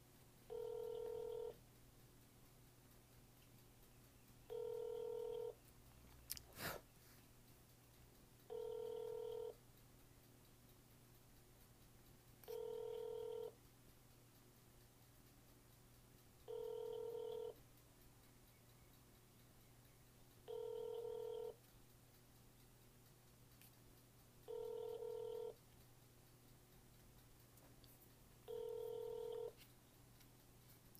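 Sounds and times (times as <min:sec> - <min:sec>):
telephone ringback tones of a call to an office in Minneapolis: 0:00.5 - 0:01.6, 0:04.5 - 0:05.6, 0:08.5 - 0:09.6, 0:12.5 - 0:13.6, 0:16.5 - 0:17.6, 0:20.5 - 0:21.6, 0:24.5 - 0:25.6, 0:28.5 - 0:29.6.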